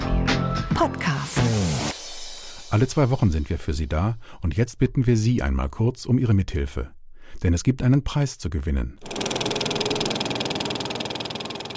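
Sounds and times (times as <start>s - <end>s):
speech: 0.8s - 1.8s, 2.7s - 9.1s
analog film projector running: 9.0s - 11.7s.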